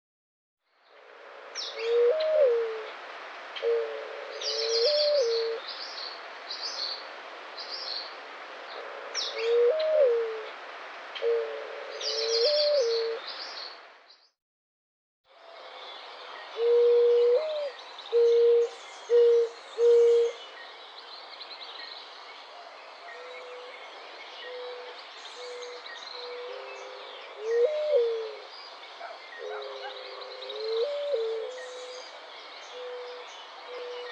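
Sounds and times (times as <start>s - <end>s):
Zenaida dove singing in Guadeloupe: 1.3s - 3.0s, 3.6s - 5.6s, 8.8s - 10.6s, 11.2s - 13.2s, 16.6s - 20.4s, 23.1s - 34.1s
birds singing in Guadeloupe: 3.6s - 7.0s, 11.2s - 14.3s, 15.7s - 34.1s.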